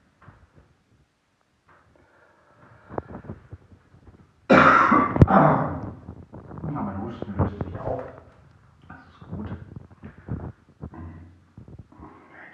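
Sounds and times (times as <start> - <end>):
breathing: 1.9 - 3.6
harsh coughing: 4.5 - 5.8
quiet murmuring: 4.9 - 12.5.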